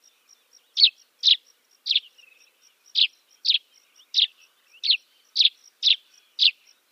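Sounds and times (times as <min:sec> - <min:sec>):
Dead Sea sparrow quick sharp chirps: 0:00.0 - 0:06.9.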